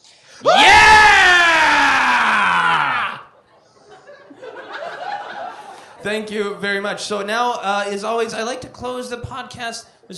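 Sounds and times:
crowd screaming and cheering with excitement: 0.4 - 3.4
laughter: 2.7 - 6.0
speech: 6.0 - 10.1.

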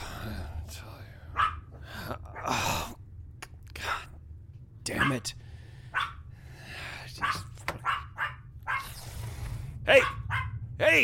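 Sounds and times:
low steady rumble: 0.0 - 11.0
dog barking: 1.3 - 1.7, 5.0 - 5.2, 5.9 - 6.3, 7.2 - 9.0, 10.0 - 10.6
speech: 5.0 - 5.4.

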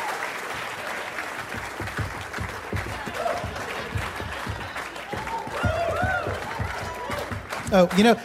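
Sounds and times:
audience clapping along: 0.0 - 8.2
scattered voices and whoops from the crowd: 4.5 - 7.4
speech: 7.7 - 8.2.

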